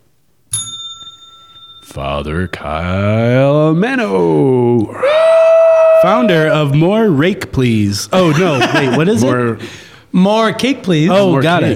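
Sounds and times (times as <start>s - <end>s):
small bell struck: 0.5s - 3.3s
speech: 1.8s - 5.2s, 6.0s - 11.7s
laughter: 8.1s - 9.7s.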